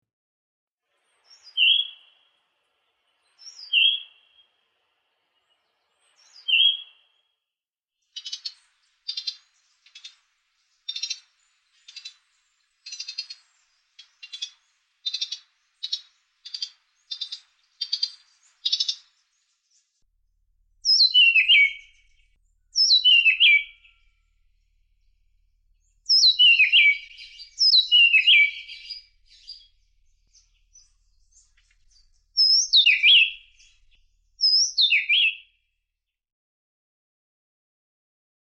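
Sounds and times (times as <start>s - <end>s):
Gray-breasted Wood-wren calling: 1.3s - 2.1s, 3.4s - 4.4s, 6.2s - 6.9s, 8.1s - 19.5s, 20.8s - 24.2s, 25.8s - 35.5s.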